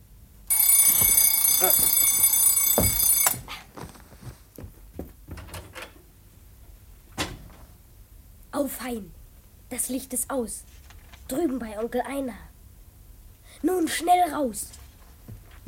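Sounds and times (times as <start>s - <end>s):
alarm clock bell ringing: 0.5s - 3.4s
rustling and shuffling movement: 0.8s - 6.1s, 10.6s - 12.1s, 13.7s - 15.6s
speech: 1.6s - 2.0s, 8.6s - 12.5s, 13.6s - 14.8s.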